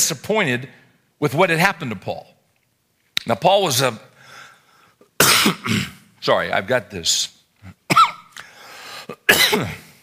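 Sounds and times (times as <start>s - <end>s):
speech: 0.1s - 2.4s, 3.2s - 4.1s, 5.4s - 7.8s, 9.1s - 9.8s
harsh raspy coughing: 5.2s - 6.0s, 7.6s - 8.3s, 9.1s - 10.0s.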